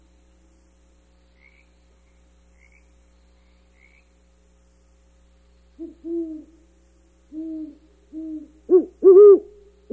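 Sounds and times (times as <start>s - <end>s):
great horned owl hooting: 5.8s - 6.7s, 7.3s - 9.9s.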